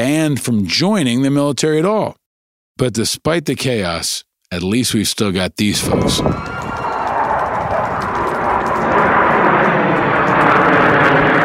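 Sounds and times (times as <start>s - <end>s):
speech: 0.0s - 2.2s, 2.8s - 6.7s
military jet of aerobatic team flying overhead: 5.8s - 11.4s.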